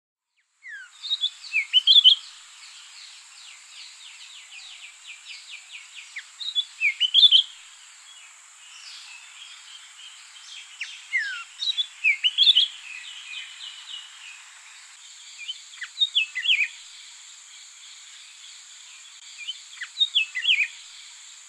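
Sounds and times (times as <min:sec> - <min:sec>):
Jerdons Leafbird: 0:00.2 - 0:21.4.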